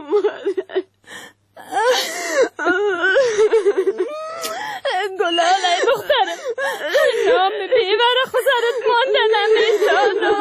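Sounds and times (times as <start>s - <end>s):
person wailing and sobbing in high-pitched cries: 1.6s - 10.3s.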